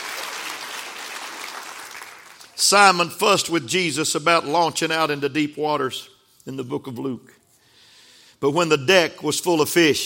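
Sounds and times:
congregation clapping hands: 0:00.0 - 0:02.6
speech: 0:02.6 - 0:07.4, 0:08.4 - 0:10.0.

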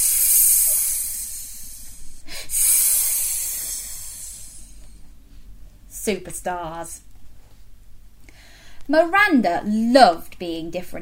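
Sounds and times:
people making a snake-like hiss: 0:00.0 - 0:04.8
speech: 0:06.0 - 0:07.1, 0:08.9 - 0:11.0.

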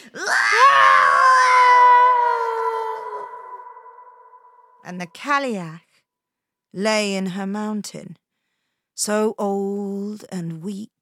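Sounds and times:
long shrill scream of hags fleeing: 0:00.2 - 0:04.8
speech: 0:04.9 - 0:05.9, 0:06.7 - 0:08.2, 0:09.0 - 0:11.0.

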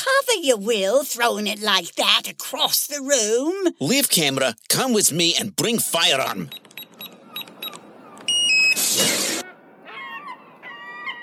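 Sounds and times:
speech: 0:00.2 - 0:06.8
mobile phone ringing with warbling electronic tones: 0:06.5 - 0:08.9
short beeps: 0:06.5 - 0:08.9.

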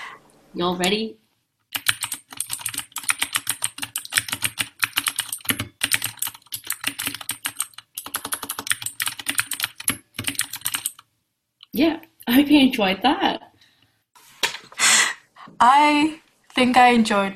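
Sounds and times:
speech: 0:00.5 - 0:01.2, 0:11.8 - 0:13.4, 0:15.6 - 0:17.3
typing on an RGB-lit mechanical keyboard: 0:01.7 - 0:11.0.

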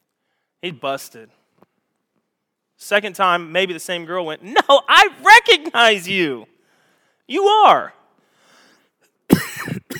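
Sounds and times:
speech: 0:00.6 - 0:01.4, 0:02.8 - 0:06.5, 0:07.3 - 0:08.0
person coughing: 0:09.3 - 0:09.9.

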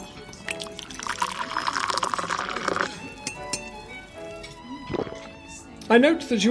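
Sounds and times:
tea pouring into a cup: 0:00.0 - 0:05.4
china clinking: 0:00.6 - 0:04.6.

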